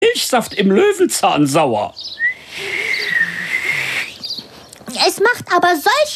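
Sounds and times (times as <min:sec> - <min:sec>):
speech: 0:00.3 - 0:02.8, 0:04.9 - 0:06.1
person whistling one high sustained note: 0:02.2 - 0:04.2
faint hiss: 0:02.3 - 0:04.7.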